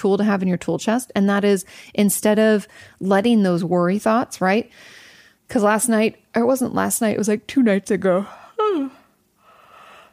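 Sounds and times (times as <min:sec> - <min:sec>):
speech: 0:00.0 - 0:09.0
person yawning: 0:08.6 - 0:09.1.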